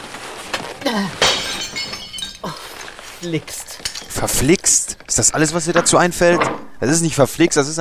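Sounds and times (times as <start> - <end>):
speech: 0.9 - 1.2, 3.2 - 7.7
glass vase falling from a wobbly shelf and shattering: 0.9 - 6.8
glass shards tinkling: 1.0 - 6.4.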